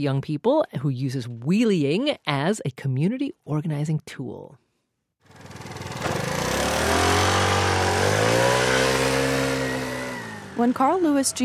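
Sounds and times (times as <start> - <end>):
speech: 0.0 - 4.6, 10.6 - 11.4
small moped engine revving: 5.2 - 11.4.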